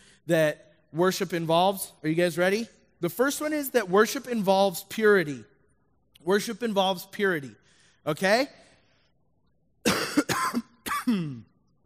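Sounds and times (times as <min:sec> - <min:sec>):
speech: 0:00.3 - 0:05.5, 0:06.2 - 0:08.6, 0:11.1 - 0:11.5
person coughing: 0:09.8 - 0:11.6.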